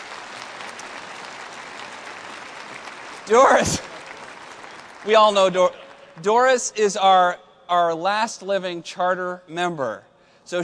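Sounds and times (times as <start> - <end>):
audience clapping at a church gathering: 0.0 - 7.2
speech: 3.3 - 3.9, 5.0 - 10.6.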